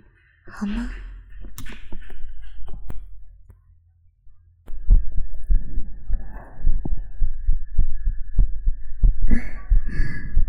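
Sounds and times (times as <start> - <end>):
low hum: 0.0 - 10.4
speech: 0.5 - 1.0
fast heartbeat heard with an ear against a chest: 1.2 - 3.3, 4.7 - 10.4.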